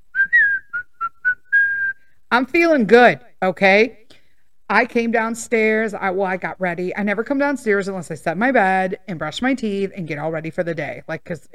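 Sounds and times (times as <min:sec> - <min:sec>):
person whistling a short bright cheerful tune: 0:00.1 - 0:02.0
speech: 0:02.3 - 0:04.0, 0:04.7 - 0:11.5.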